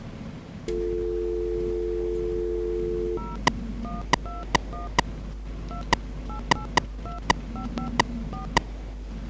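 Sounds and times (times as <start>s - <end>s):
telephone dial tone: 0.7s - 5.0s, 5.7s - 8.6s
telephone keypad beeps as a number is dialed: 2.8s - 5.1s, 5.7s - 8.6s.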